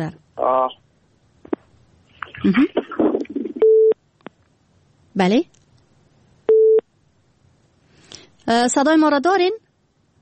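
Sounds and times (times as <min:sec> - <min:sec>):
speech: 0:00.0 - 0:00.8, 0:02.4 - 0:02.8, 0:05.2 - 0:05.6, 0:08.5 - 0:09.6
faint noise: 0:00.0 - 0:10.2
telephone busy tone after a dropped call: 0:03.6 - 0:04.0.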